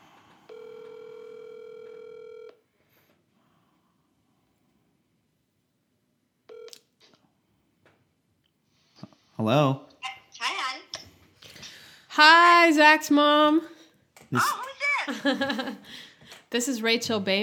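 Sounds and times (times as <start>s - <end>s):
telephone line ring tone through a handset: 0.4s - 2.7s, 6.5s - 6.9s
speech: 9.4s - 9.9s, 12.2s - 13.7s, 14.3s - 17.4s.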